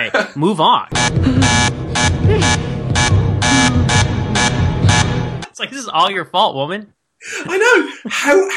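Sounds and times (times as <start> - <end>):
speech: 0.0 - 2.7, 5.6 - 8.5
harsh electric door buzzer: 0.9 - 5.4.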